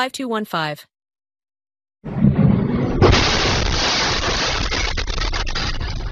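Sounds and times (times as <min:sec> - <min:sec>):
loud deep explosion from airstrike in a city: 0:02.0 - 0:06.1
sustained roaring rumble with crackling noise: 0:02.0 - 0:06.1.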